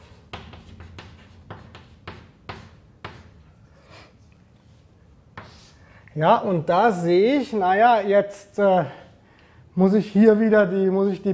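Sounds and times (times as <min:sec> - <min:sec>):
pen writing on paper during a maths derivation: 0:00.0 - 0:03.3
speech: 0:06.2 - 0:09.0, 0:09.8 - 0:11.3.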